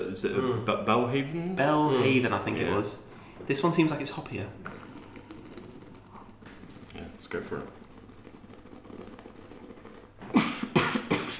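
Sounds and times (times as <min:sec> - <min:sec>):
speech: 0:00.0 - 0:04.8, 0:07.2 - 0:07.8
person coughing after beer went down the wrong way: 0:10.4 - 0:11.3.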